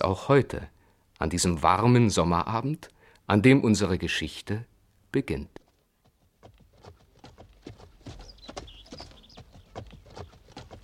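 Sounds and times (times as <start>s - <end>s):
faint birds chirping on a warm summer evening: 0.0s - 10.8s
speech: 0.1s - 5.6s
ridden mare's hooves clip-clopping at a brisk pace on a summer evening: 5.6s - 10.8s.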